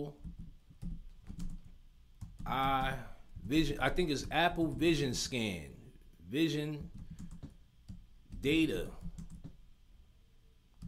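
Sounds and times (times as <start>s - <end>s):
speech: 0.0s - 0.3s, 2.4s - 7.0s, 8.4s - 9.0s
faint typing on a computer keyboard: 0.2s - 3.0s, 6.8s - 9.6s.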